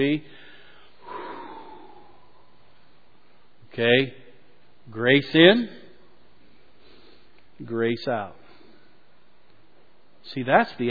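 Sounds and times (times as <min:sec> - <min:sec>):
speech: 0:00.0 - 0:00.4, 0:03.8 - 0:04.2, 0:04.9 - 0:05.8, 0:07.6 - 0:08.4, 0:10.3 - 0:10.8
audience exhaling together on cue: 0:01.0 - 0:02.3.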